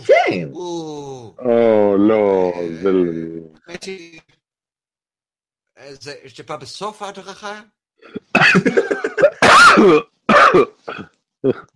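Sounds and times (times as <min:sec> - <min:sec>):
speech: 0:00.3 - 0:04.3, 0:05.8 - 0:11.7
person coughing: 0:08.0 - 0:11.7
throat clearing: 0:09.4 - 0:11.7.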